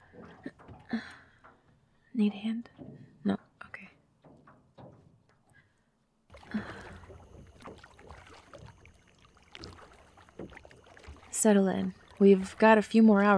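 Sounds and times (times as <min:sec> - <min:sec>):
soft watery background: 0:00.0 - 0:13.3
speech: 0:02.2 - 0:03.4, 0:11.4 - 0:13.3
canoe paddle dipping and pulling through lagoon water: 0:06.3 - 0:13.3.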